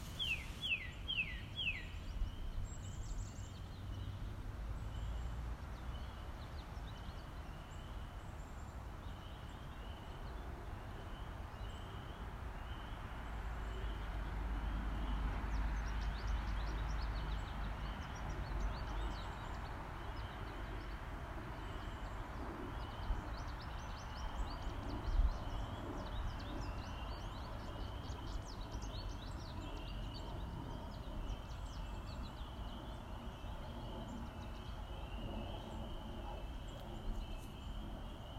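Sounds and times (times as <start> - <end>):
birds: 0.0 - 38.3.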